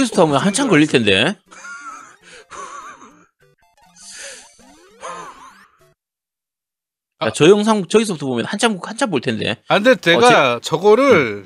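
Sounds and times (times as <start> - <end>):
speech: 0.0 - 1.7, 7.2 - 11.4
heavy labored breathing with raspy wheezing: 2.2 - 2.9.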